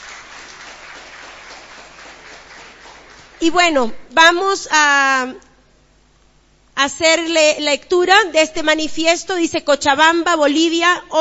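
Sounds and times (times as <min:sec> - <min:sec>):
audience applause: 0:00.0 - 0:03.4
speech: 0:03.4 - 0:05.5, 0:06.8 - 0:11.2.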